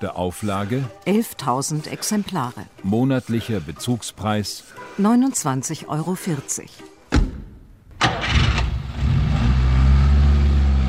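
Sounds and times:
speech: 0.0 - 6.9
car engine cranking and running: 8.0 - 10.8.

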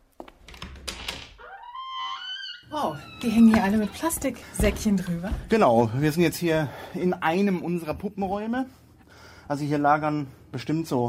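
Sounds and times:
door creaking open onto a puppet storage room: 0.2 - 5.5
speech: 2.7 - 8.8, 9.5 - 11.0
soft knocks and thunks of a door opening: 3.2 - 5.8.

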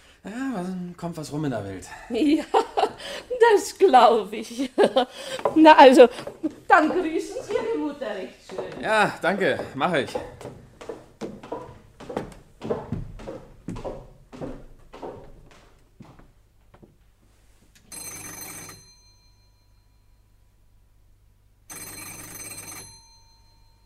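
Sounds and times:
speech: 0.2 - 10.6
laughter: 1.9 - 3.6, 4.5 - 5.5
footsteps on a hard floor: 5.2 - 17.7
electric doorbell ringing at an apartment door: 17.9 - 20.2, 21.7 - 23.8.

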